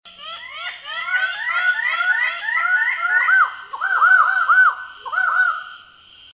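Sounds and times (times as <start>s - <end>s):
Raggiana bird-of-paradise calling: 0.1s - 6.2s.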